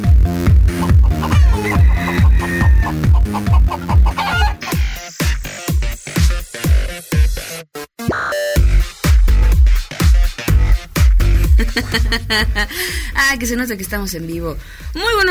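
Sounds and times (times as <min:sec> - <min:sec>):
driving musical beat: 0:00.0 - 0:15.2
loud rooster calls chopped into a rhythmic pattern: 0:01.1 - 0:04.7
laughter: 0:11.6 - 0:13.0
speech: 0:11.9 - 0:15.2.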